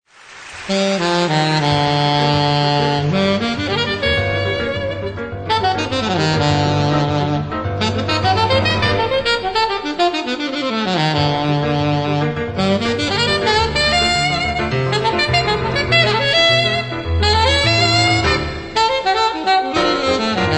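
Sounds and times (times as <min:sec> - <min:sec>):
gafieira jazz saxophone: 0:00.6 - 0:20.5.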